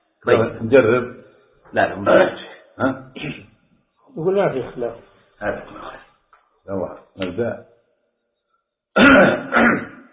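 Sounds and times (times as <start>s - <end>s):
speech: 0.2s - 3.5s, 4.2s - 6.0s, 6.6s - 7.7s, 9.0s - 9.8s
man coughing and clearing his throat: 2.1s - 3.4s, 9.0s - 10.0s.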